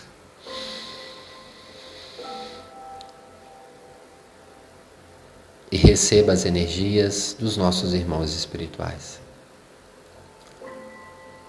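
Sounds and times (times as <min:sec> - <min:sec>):
soft sustained music tones: 0:00.0 - 0:11.4
deep inhalation through the nose: 0:00.4 - 0:02.9
speech: 0:05.8 - 0:09.2.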